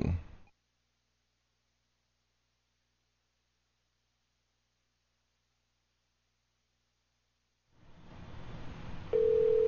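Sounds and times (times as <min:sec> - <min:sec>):
telephone line noise hiss: 0:07.8 - 0:09.6
telephone line ring tone on a redial: 0:09.1 - 0:09.6.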